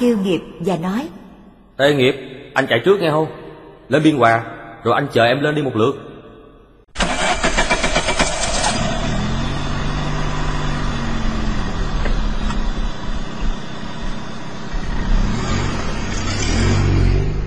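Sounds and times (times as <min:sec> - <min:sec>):
speech: 0:00.0 - 0:01.2, 0:01.8 - 0:06.1
Renault Sport car engine starting, revving and pulling away: 0:07.0 - 0:17.4.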